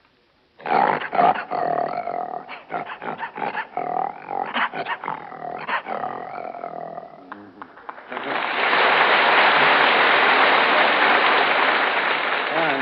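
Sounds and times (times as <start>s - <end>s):
man imitating a lion roaring: 0.6s - 7.6s
audience applause: 7.5s - 12.7s.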